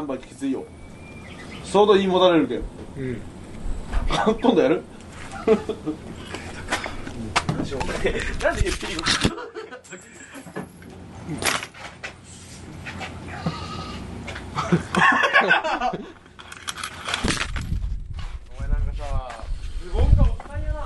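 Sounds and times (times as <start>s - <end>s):
speech: 0.0s - 3.4s, 4.1s - 6.3s, 7.2s - 10.1s, 11.3s - 11.6s, 14.7s - 16.1s
rustling noisy background: 0.0s - 20.8s
laughter: 5.2s - 6.7s, 7.8s - 10.5s, 14.5s - 16.2s
goat bleating with wavering cries: 13.2s - 14.2s.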